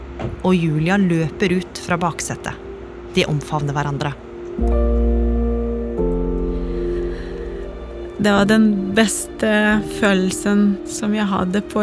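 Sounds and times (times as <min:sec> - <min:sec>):
speech: 0:00.2 - 0:02.6, 0:03.2 - 0:04.9, 0:08.2 - 0:11.8
car engine humming while driving along a road: 0:04.2 - 0:11.8.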